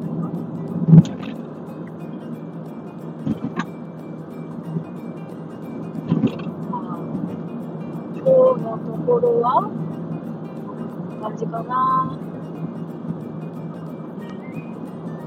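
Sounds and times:
car interior engine and road noise while driving: 0.0s - 15.2s
bumps or thuds: 6.1s - 6.5s
speech: 9.1s - 9.8s, 11.3s - 12.3s.

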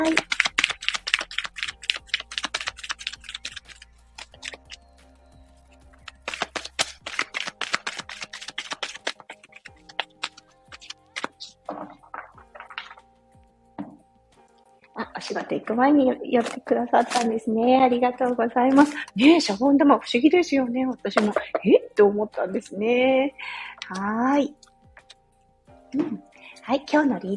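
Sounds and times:
tarot cards being shuffled: 0.0s - 4.8s, 5.8s - 13.0s, 16.4s - 17.4s
speech: 15.4s - 24.6s, 25.9s - 27.3s.

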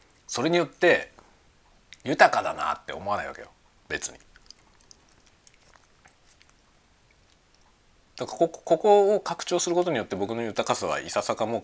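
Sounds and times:
faint hiss: 0.0s - 11.6s
speech: 0.3s - 1.1s, 2.0s - 4.3s, 8.2s - 11.6s
chewing spaghetti eaten for lunch: 3.9s - 7.8s
wet mouth clicks and smacks: 4.0s - 8.2s.

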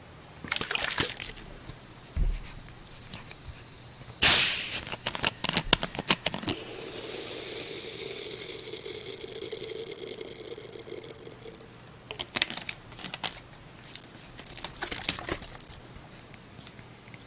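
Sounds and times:
carbonated drink fizzing: 0.4s - 12.2s
can or bottle of carbonated drink cracking open: 4.2s - 15.8s.

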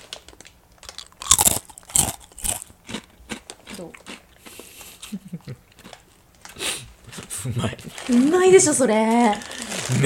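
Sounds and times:
crunching a roasted red onion flavoured snack: 0.0s - 4.6s
speech: 3.8s - 4.1s, 7.4s - 10.0s.

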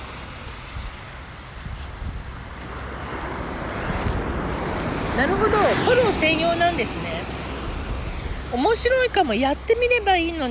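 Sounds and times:
ocean surf washing up onto the shore on a Shonan beach: 0.0s - 10.5s
wind noise on a Shonan beach: 0.0s - 10.5s
speech: 5.2s - 7.3s, 8.5s - 10.5s.

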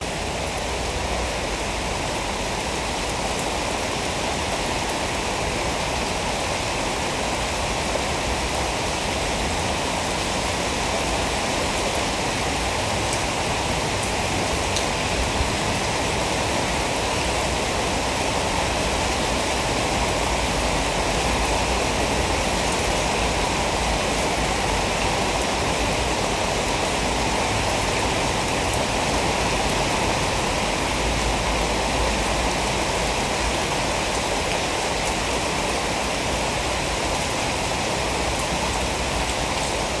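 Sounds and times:
steady dense rain: 0.0s - 39.9s.

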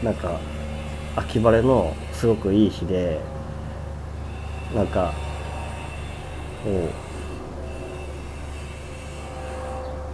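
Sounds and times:
speech: 0.0s - 0.6s, 1.2s - 3.4s, 4.7s - 5.3s, 6.6s - 7.0s
helicopter flying overhead: 0.0s - 10.1s.

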